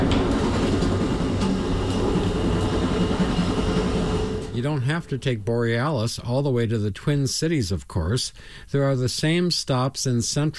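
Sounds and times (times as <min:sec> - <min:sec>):
moving train rumbling, heard between passenger cars: 0:00.0 - 0:05.5
speech: 0:04.6 - 0:10.5.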